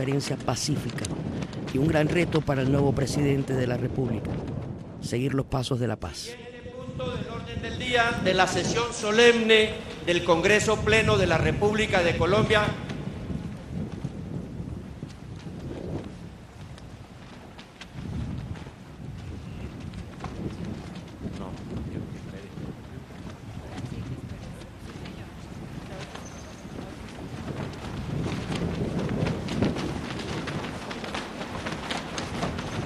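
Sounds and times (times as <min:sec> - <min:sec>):
speech: 0:00.0 - 0:06.4, 0:07.0 - 0:12.8
wind beating against large flags during a solemn session of Colombia's Congress: 0:00.0 - 0:32.8.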